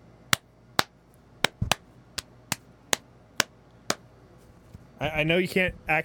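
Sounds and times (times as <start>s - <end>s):
hand slapping a bare obese belly: 0.3s - 4.0s
speech: 5.0s - 6.0s.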